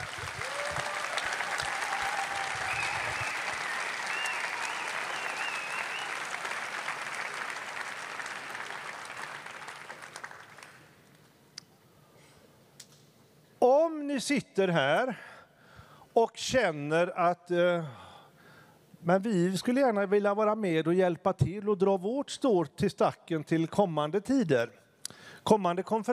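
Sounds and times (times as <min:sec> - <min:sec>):
audience applause at a church conference following a prayer: 0:00.0 - 0:10.9
speech: 0:14.2 - 0:15.3, 0:16.2 - 0:18.0, 0:19.0 - 0:24.8, 0:25.4 - 0:26.1.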